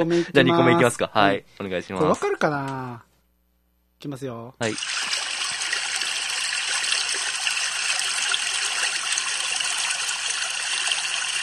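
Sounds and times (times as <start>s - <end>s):
speech: 0.0s - 3.1s, 4.0s - 5.1s
water rushing: 4.7s - 11.4s.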